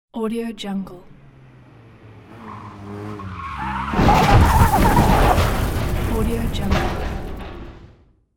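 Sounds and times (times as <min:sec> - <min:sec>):
car crash: 0:01.2 - 0:08.3.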